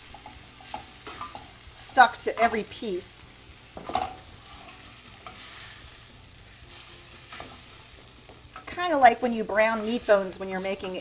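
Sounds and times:
tomato paste frying with vegetables and onions in a pan: 0.0 - 10.9
speech: 2.0 - 3.2, 8.9 - 10.9.

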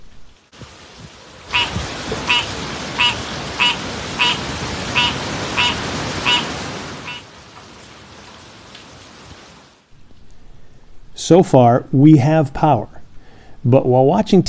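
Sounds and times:
hurricane wind gusts: 0.0 - 9.8
heavy hurricane rain: 0.0 - 10.4
frog croaking: 1.5 - 7.3
speech: 11.3 - 13.0, 13.6 - 14.4.

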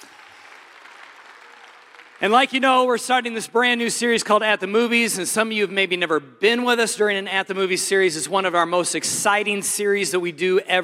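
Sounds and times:
audience applauding: 0.0 - 2.9
speech: 2.2 - 10.8.

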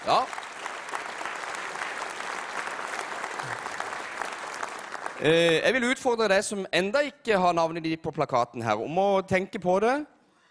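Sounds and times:
audience applause: 0.0 - 5.7
speech: 5.2 - 10.5.

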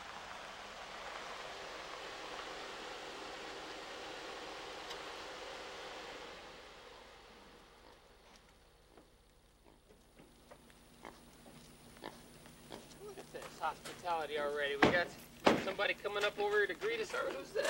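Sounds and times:
steady hiss: 0.0 - 17.6
small pot-bellied pig grunting and snorting: 12.0 - 13.4
speech: 13.6 - 17.6.

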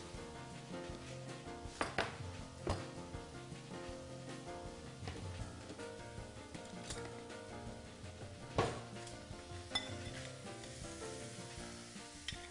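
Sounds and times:
sugar sizzling as it heats in a dry sauté pan: 0.0 - 12.4.

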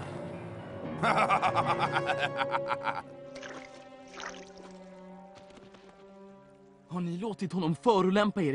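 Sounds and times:
laughter: 1.0 - 3.1
speech: 1.0 - 3.2, 6.9 - 8.5
water sloshing in a stream: 3.3 - 5.1
man's footsteps splashing into a stream: 3.3 - 5.8.

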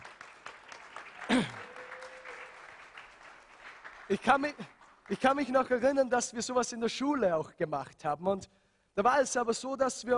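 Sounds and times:
crowd applauding: 0.0 - 5.6
whoop-like cry: 1.6 - 2.5
speech: 4.1 - 10.1.

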